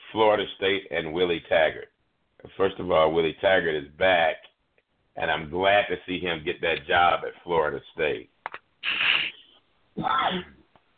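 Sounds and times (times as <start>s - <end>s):
speech: 0.1s - 4.5s, 5.2s - 9.0s, 10.0s - 10.6s
person sneezing: 8.8s - 10.6s.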